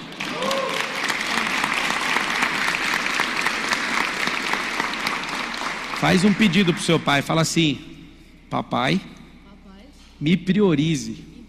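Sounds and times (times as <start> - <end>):
applause from a large crowd: 0.0 - 7.4
faint voices and whoops: 0.2 - 1.5
speech: 6.0 - 7.9, 8.5 - 9.2, 10.2 - 11.3.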